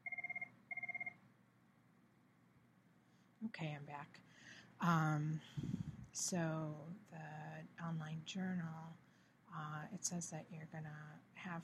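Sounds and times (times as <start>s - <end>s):
telephone ringing with electronic pulses: 0.0s - 1.2s
low hum: 0.0s - 11.6s
speech: 3.4s - 11.6s.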